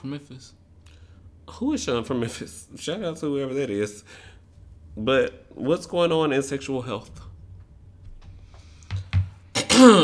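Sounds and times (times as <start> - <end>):
speech: 0.0 - 0.6, 1.5 - 4.4, 5.0 - 7.3, 9.8 - 10.0
person clearing throat: 9.6 - 10.0.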